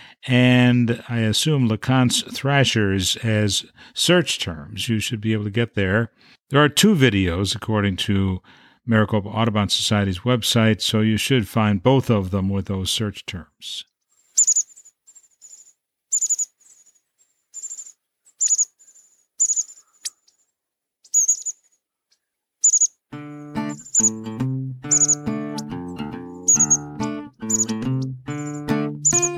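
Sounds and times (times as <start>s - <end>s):
speech: 0.2s - 13.9s
American Bushtit calls: 14.4s - 17.0s, 17.6s - 20.4s, 21.1s - 21.7s, 22.6s - 23.0s, 23.7s - 24.3s, 24.9s - 25.7s, 26.4s - 29.3s.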